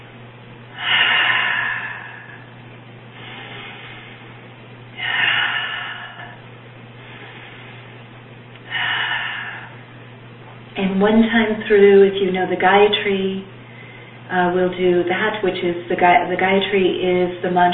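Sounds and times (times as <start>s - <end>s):
steady low hum: 0.0s - 17.7s
deep breathing in and out: 0.7s - 10.2s, 13.6s - 14.3s
speech: 10.9s - 13.5s, 14.3s - 17.7s.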